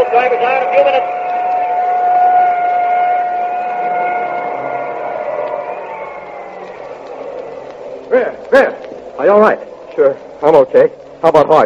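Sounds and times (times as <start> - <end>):
ambulance siren leaving scene of car crash: 0.0 - 8.4
speech: 8.1 - 11.6.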